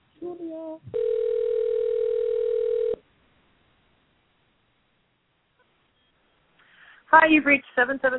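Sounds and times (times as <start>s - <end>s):
speech: 0.3s - 1.4s, 7.2s - 8.1s
telephone ringback tone: 0.9s - 3.0s.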